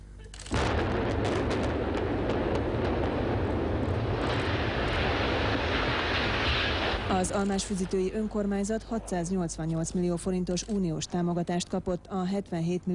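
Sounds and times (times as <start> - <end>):
building demolition blast of old factory halls: 0.5 - 8.2
rumble of collapsing factory structure and debris: 0.6 - 8.2
speech: 7.1 - 12.9.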